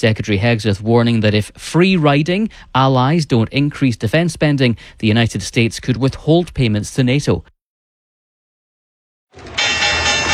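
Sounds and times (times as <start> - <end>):
speech: 0.0 - 7.5
stock exchange opening bell ringing: 9.4 - 10.3.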